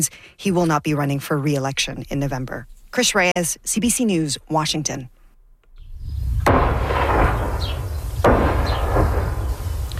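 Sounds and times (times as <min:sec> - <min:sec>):
speech: 0:00.0 - 0:05.2
explosions from airstrikes: 0:05.8 - 0:09.9.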